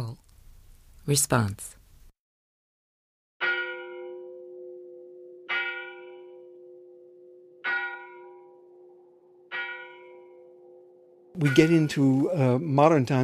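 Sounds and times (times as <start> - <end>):
speech: 1.1 - 1.8, 11.4 - 13.2
church bell tolling: 3.4 - 12.2.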